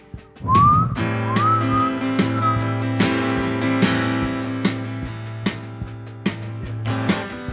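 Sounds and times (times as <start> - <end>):
musical backing of bass and regular drum hits: 0.0 - 7.5
person whistling a melody with sliding pitches: 0.4 - 2.9.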